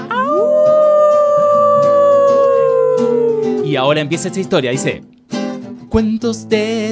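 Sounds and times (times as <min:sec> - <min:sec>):
wolf howling: 0:00.0 - 0:04.1
speech: 0:03.7 - 0:05.1, 0:05.9 - 0:06.8.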